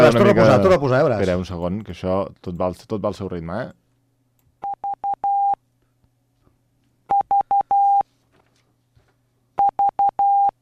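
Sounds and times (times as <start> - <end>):
speech: 0.0 - 3.8
Morse code beeps: 4.6 - 5.6, 7.1 - 8.0, 9.6 - 10.6.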